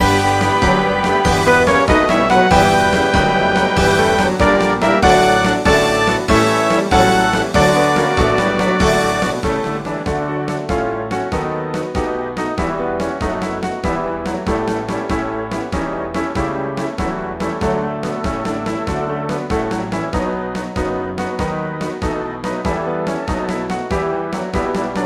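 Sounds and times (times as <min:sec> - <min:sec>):
choir singing an anthem: 0:00.0 - 0:09.8
symphony orchestra playing an anthem: 0:00.0 - 0:11.1
piano: 0:00.0 - 0:25.0.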